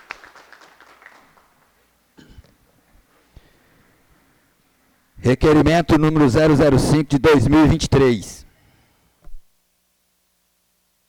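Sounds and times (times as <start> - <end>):
faint applause in a large room: 0.0 - 1.8
speech: 5.2 - 8.4.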